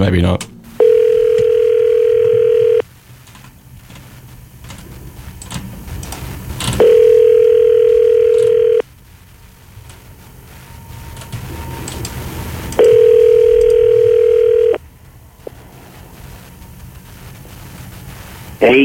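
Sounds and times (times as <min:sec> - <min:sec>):
speech: 0:00.0 - 0:00.5
quiet phone line hiss: 0:00.0 - 0:18.8
two-second ringback tones of a phone call to a mobile number: 0:00.8 - 0:02.8, 0:06.8 - 0:08.8, 0:12.8 - 0:14.8.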